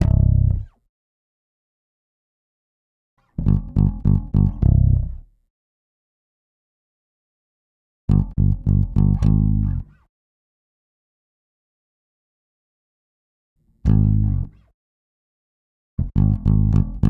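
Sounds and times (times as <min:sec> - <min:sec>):
bass line in C minor: 0:00.0 - 0:00.8, 0:03.4 - 0:05.2, 0:08.1 - 0:09.9, 0:13.9 - 0:14.6, 0:16.0 - 0:17.0.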